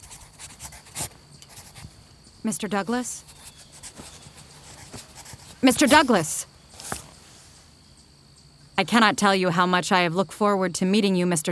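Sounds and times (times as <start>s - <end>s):
pencil writing hurriedly on paper: 0.0s - 2.0s, 2.9s - 7.0s
speech: 2.4s - 3.3s, 5.6s - 6.5s, 8.8s - 11.4s.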